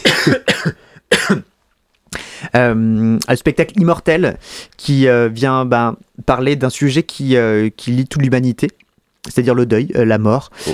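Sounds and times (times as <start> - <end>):
person coughing: 0.0 - 1.5
speech: 0.2 - 0.5, 2.5 - 10.7.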